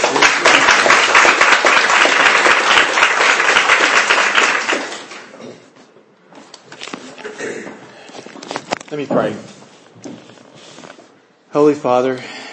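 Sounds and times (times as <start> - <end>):
audience applause welcoming a speaker in a church: 0.0 - 5.4
shuffling: 6.3 - 11.2
speech: 9.0 - 9.6, 11.6 - 12.4.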